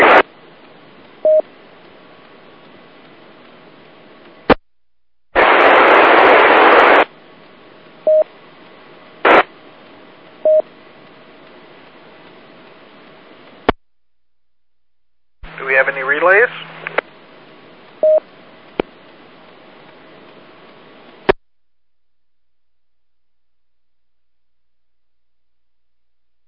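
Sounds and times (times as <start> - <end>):
radio static hissing: 0.0 - 0.4, 5.4 - 13.8, 15.4 - 21.4
burst of radio noise: 5.4 - 7.1, 9.2 - 9.5
faint warbling transmission from a station checking into a radio net: 15.5 - 17.0.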